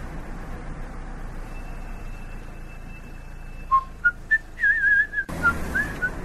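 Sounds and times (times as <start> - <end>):
person whistling off-key tune: 3.7 - 6.2.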